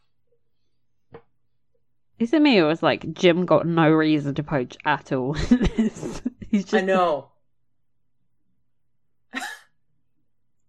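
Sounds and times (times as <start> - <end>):
speech: 2.2 - 7.3
sharp explosive cough: 9.4 - 9.8.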